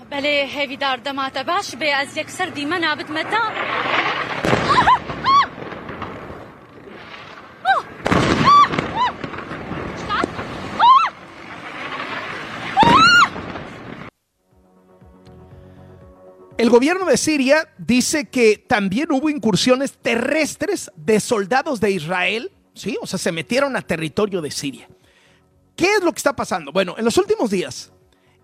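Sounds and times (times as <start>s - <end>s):
woman journalist reporting live: 0.0s - 3.9s, 10.0s - 10.5s
speech: 0.2s - 4.3s, 16.7s - 25.0s, 25.8s - 28.0s
booming explosions around ministries in Damascus, Syria: 3.1s - 14.1s.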